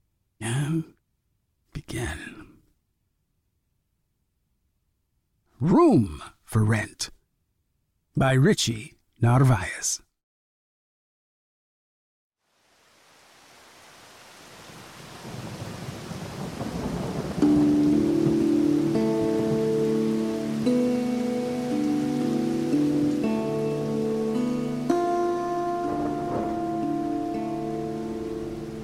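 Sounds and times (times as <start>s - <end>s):
speech: 0.7s - 1.0s, 5.6s - 7.2s, 8.2s - 10.0s
steady rain hissing outside a door: 12.4s - 28.8s
low rolling rumble of thunder: 15.1s - 19.7s, 25.9s - 26.7s.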